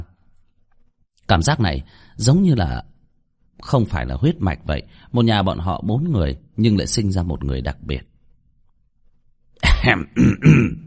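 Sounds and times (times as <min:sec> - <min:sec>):
speech: 0:01.3 - 0:02.9, 0:03.6 - 0:08.1, 0:09.8 - 0:10.8
light cough with throat-clearing rasp: 0:09.6 - 0:10.8.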